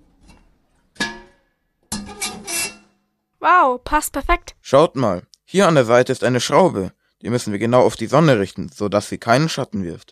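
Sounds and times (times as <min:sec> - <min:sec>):
cooking pot scraping as it is fitted into a solar cooker: 0:01.9 - 0:02.9
speech: 0:03.4 - 0:10.1.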